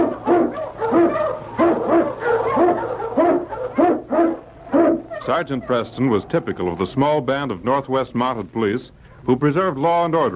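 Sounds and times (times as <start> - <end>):
sled dog barking eagerly: 0.0 - 5.3
faint low hum: 0.0 - 10.3
speech: 5.3 - 10.3.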